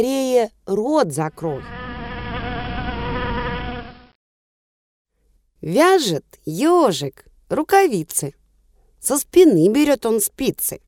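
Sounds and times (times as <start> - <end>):
speech: 0.0 - 1.8, 5.6 - 8.4, 9.0 - 10.8
flying bee swarm buzzing: 1.4 - 4.2.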